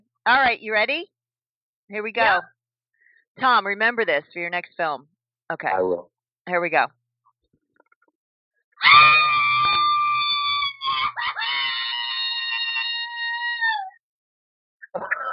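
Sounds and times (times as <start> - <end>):
speech: 0.2 - 1.2, 1.9 - 2.5, 3.4 - 7.0
long loud human scream performed for film: 8.8 - 14.0.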